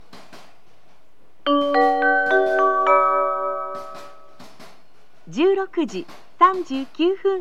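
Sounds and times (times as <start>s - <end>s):
limited express train at Kyoto station: 1.5s - 7.2s.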